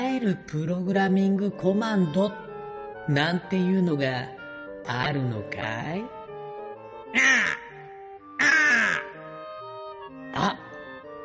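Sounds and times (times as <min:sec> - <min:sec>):
speech: 0:00.2 - 0:02.5, 0:03.1 - 0:06.2
bird cawing like a crow: 0:07.1 - 0:09.4.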